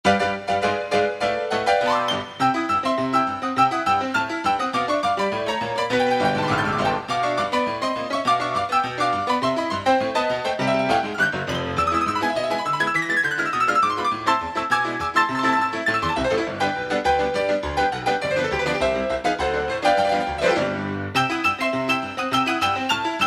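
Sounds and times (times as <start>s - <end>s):
piano: 0.0s - 23.2s.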